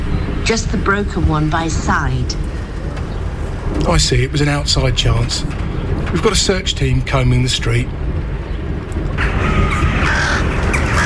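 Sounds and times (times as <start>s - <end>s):
low outdoor rumble: 0.0s - 11.0s
speech: 0.5s - 2.6s, 3.8s - 8.0s
crows cawing: 9.2s - 11.0s.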